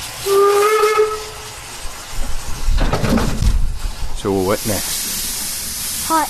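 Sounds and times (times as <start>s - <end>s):
steam train whistle at a ski area on a windy snowy day: 0.0s - 1.7s
steam train hissing steam: 0.0s - 6.2s
speech: 4.2s - 5.0s, 6.1s - 6.2s.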